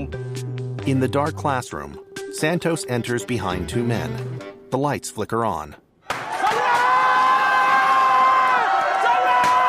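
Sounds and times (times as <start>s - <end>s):
speech: 0.8s - 5.8s
crowd shouting surprise and cheering at a surprise party in a classroom: 6.1s - 9.6s.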